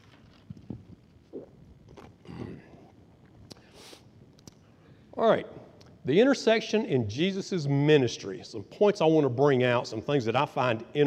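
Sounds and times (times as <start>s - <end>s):
person sipping water with slurps and swallows: 0.4s - 4.6s
speech: 5.2s - 11.0s.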